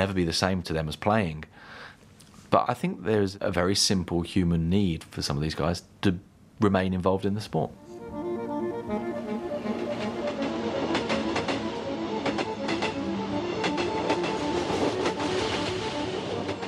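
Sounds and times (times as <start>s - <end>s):
speech: 0.0s - 1.8s, 2.5s - 7.8s, 8.9s - 9.2s
train rolling along the rails: 8.8s - 16.6s
train wheels clacking over track joints: 9.7s - 16.6s.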